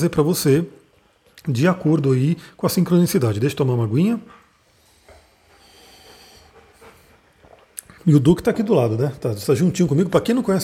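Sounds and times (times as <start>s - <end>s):
speech: 0.0s - 0.8s, 1.4s - 4.4s, 8.0s - 10.6s
large dog breathing and panting with raspy snuffling breaths: 3.6s - 9.0s.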